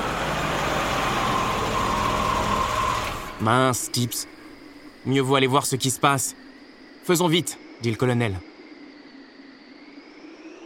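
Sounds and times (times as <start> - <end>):
car engine idling with a faint whine: 0.0 - 3.6
speech: 3.4 - 4.4, 5.0 - 8.5.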